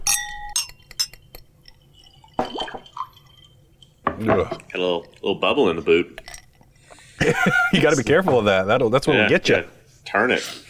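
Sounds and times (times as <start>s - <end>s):
glasses clinking together in a toast: 0.0s - 5.3s
brief splash of ginger ale on ice: 1.7s - 5.5s
speech: 4.2s - 6.2s, 7.2s - 10.6s.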